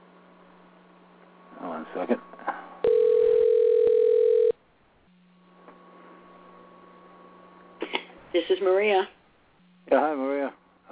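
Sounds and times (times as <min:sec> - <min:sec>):
speech: 0:01.8 - 0:02.4, 0:08.6 - 0:09.2
telephone tone while calling a person: 0:02.8 - 0:04.6.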